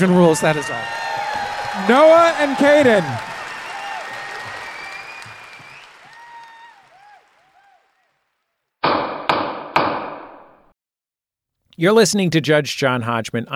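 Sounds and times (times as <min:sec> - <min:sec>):
speech: 0:00.0 - 0:01.0, 0:01.8 - 0:03.3, 0:11.8 - 0:13.5
gavel knocks: 0:08.9 - 0:10.4.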